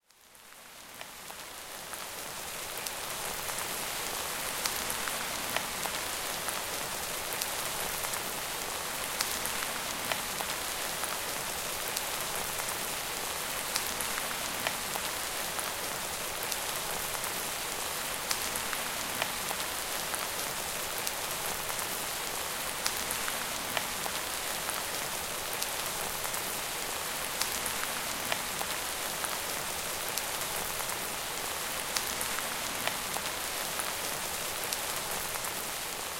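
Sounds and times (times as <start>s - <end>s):
rain: 0.0s - 36.1s.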